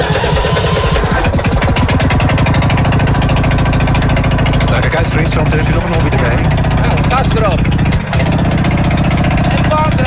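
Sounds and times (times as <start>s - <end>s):
rough car engine cranked to start and idling as it warms up: 0.0s - 10.0s.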